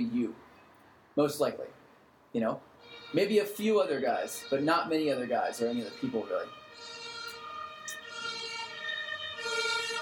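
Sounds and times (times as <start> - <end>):
low rumble of traffic: 0.0 - 10.0
speech: 1.2 - 6.9
ambulance siren wailing: 2.8 - 10.0.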